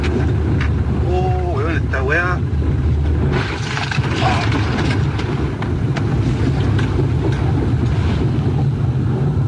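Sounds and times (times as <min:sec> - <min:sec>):
rushing floodwater sweeping away a white pickup truck: 0:00.0 - 0:09.4.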